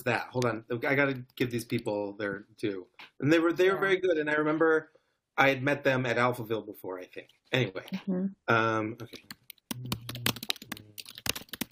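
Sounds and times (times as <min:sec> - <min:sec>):
speech: 0:00.0 - 0:10.0
furious typing on a computer keyboard: 0:09.1 - 0:11.7.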